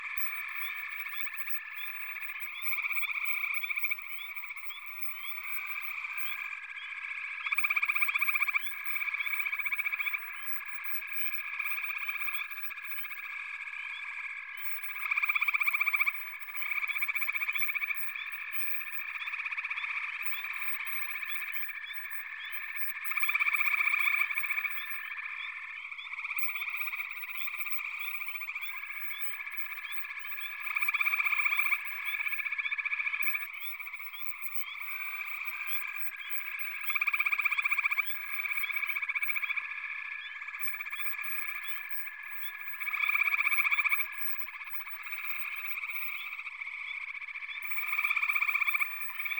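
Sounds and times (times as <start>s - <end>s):
frog chorus at a pond: 0.0s - 49.3s.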